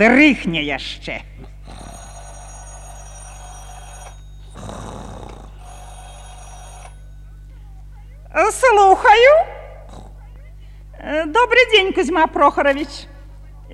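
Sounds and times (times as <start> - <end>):
speech: 0.0 - 1.5, 8.4 - 9.6, 11.0 - 13.1
telephone bell ringing in a home: 1.6 - 7.9.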